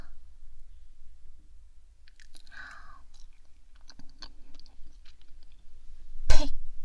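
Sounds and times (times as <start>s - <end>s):
steady low hum: 0.0s - 6.8s
chewing on a bite of food from a banquet: 2.1s - 5.7s.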